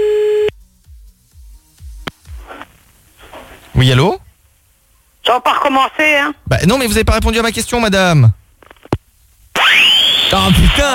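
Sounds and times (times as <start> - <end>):
shrill harmonic-rich telephone line tone at the end of a call: 0.0 - 0.5
crackling static: 2.0 - 10.9
speech: 3.8 - 4.2, 5.7 - 8.4, 10.3 - 10.9.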